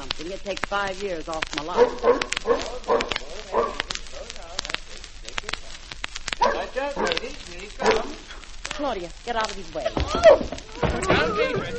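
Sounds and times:
speech: 0.2 - 3.6, 7.2 - 11.7
large dog barking: 1.7 - 4.0, 6.4 - 8.3
laughter: 9.6 - 11.7.

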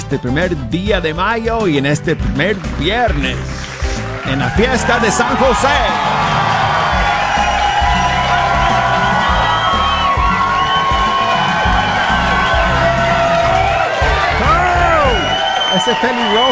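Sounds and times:
speech: 0.1 - 3.6, 4.2 - 6.4, 15.8 - 16.5
loud lively crowd cheering and whooping: 3.8 - 16.5
audience members shouting piercing cries: 6.9 - 15.4.

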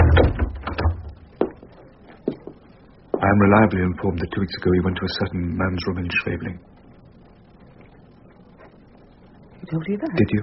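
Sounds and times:
study door swinging shut with a soft thud: 0.0 - 1.2
speech: 3.2 - 6.8, 9.7 - 10.4.

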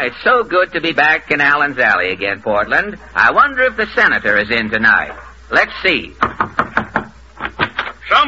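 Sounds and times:
speech: 0.1 - 6.4, 8.1 - 8.2
knocking on a door: 6.2 - 7.7.

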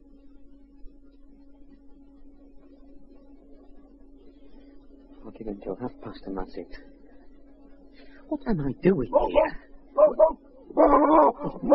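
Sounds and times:
speech: 5.2 - 7.0, 8.3 - 9.6, 11.0 - 11.7
dog barking in short sharp yips and whining barks: 9.1 - 11.7.

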